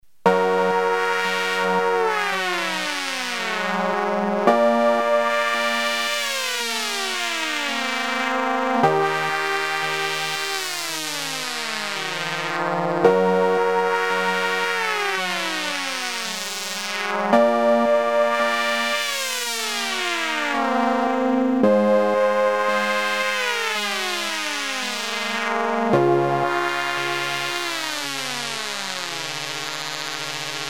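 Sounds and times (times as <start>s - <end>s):
raw Red Sound DarkStar synthesizer: 0.1s - 30.6s.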